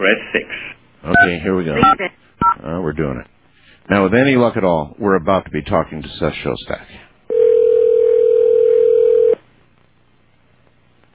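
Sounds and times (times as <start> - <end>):
speech: 0.0 - 7.0
telephone line ringing tone: 7.3 - 9.4.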